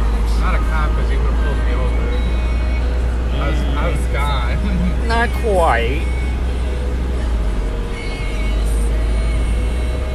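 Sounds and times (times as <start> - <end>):
low-pitched rumble of a car driving heard from inside the cabin: 0.0 - 10.1
road noise inside car: 0.0 - 10.1
speech: 5.4 - 6.2.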